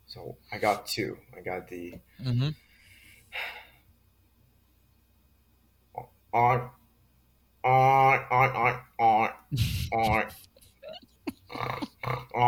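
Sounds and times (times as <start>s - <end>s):
speech: 0.1s - 2.7s, 3.3s - 3.6s, 6.0s - 6.8s, 7.6s - 12.4s
voice imitating a pig's oink with grunting snorts and gasps: 7.6s - 10.3s, 11.4s - 12.4s.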